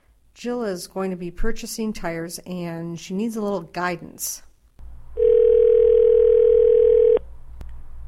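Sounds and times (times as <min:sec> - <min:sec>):
speech: 0:00.4 - 0:04.5
electronic telephone ringing tone: 0:05.2 - 0:07.2.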